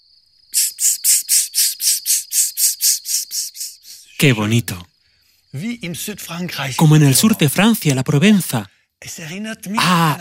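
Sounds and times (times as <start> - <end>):
cicada buzzing: 0.0 - 4.4
speech: 4.2 - 4.8, 5.5 - 10.1.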